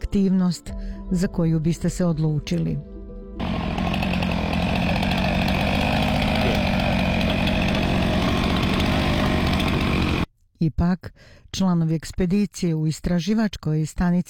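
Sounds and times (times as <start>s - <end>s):
speech: 0.1s - 2.9s, 10.6s - 14.2s
motorized saw cutting through ice at an Antarctic research station: 3.4s - 10.3s.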